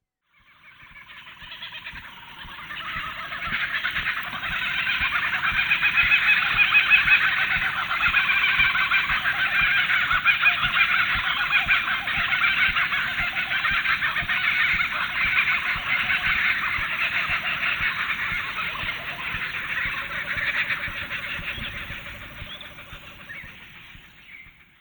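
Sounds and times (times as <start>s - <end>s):
rough slightly noisy background: 1.9s - 24.7s
laughing kookaburra cackling call: 2.2s - 24.4s.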